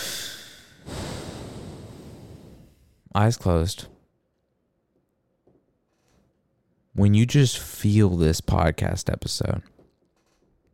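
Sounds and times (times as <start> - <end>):
deep breath: 0.0 - 3.1
speech: 3.1 - 4.0, 7.0 - 9.7.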